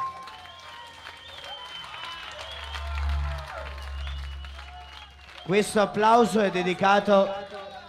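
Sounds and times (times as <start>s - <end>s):
large crowd applauding loudly in a reverberant club: 0.0s - 7.8s
low rumble: 2.1s - 6.0s.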